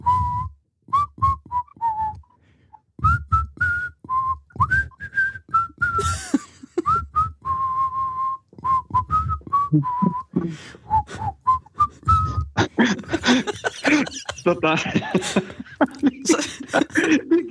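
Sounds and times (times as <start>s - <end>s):
person whistling a melody: 0.0s - 12.6s
breaths between whistled phrases: 2.2s - 2.9s, 10.3s - 14.1s, 15.1s - 15.8s, 16.6s - 17.3s
laughter: 6.0s - 7.0s, 12.6s - 17.4s
speech: 14.5s - 16.0s.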